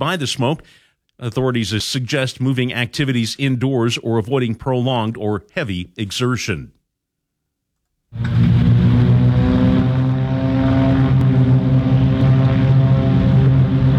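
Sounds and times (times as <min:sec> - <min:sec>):
speech: 0:00.0 - 0:06.8, 0:08.1 - 0:08.6
three Beechcraft Bonanza propeller planes taking off from a regional airport: 0:08.2 - 0:13.9.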